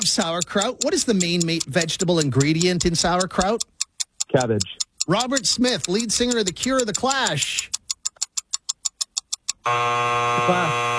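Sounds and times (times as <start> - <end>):
speech: 0.0 - 7.8, 9.6 - 10.9
sharp ticking countdown beeps: 0.0 - 10.9
loud harsh game-show buzzer: 9.6 - 10.9.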